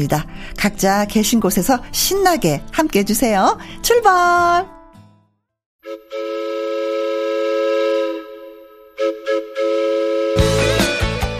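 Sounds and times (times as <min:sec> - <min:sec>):
speech: 0:00.0 - 0:04.8
loud sustained train whistle: 0:05.8 - 0:11.0.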